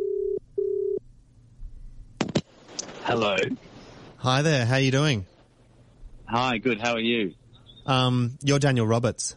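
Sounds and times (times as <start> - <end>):
buzzing telephone tones of a phone line connecting: 0.0 - 1.0
quiet hiss: 0.1 - 9.3
speech: 3.1 - 5.3, 6.3 - 9.3.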